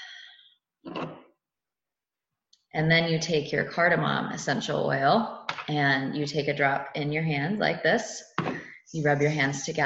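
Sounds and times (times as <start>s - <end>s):
deep breath in and out: 0.0s - 0.6s
speech: 2.7s - 8.3s, 8.9s - 9.8s.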